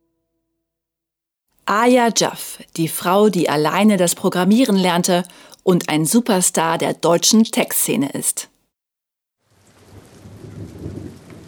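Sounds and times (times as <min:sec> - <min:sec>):
speech: 0:01.7 - 0:08.5
rumbling thunderstorm on a cold Monday morning: 0:09.5 - 0:11.4
steady rainfall on a cold Monday morning: 0:09.5 - 0:11.4.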